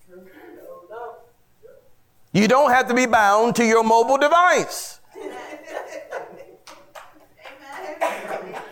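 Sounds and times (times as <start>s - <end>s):
speech: 2.3s - 5.0s
laughter: 5.1s - 8.7s
lone person clapping in a room: 6.6s - 7.9s.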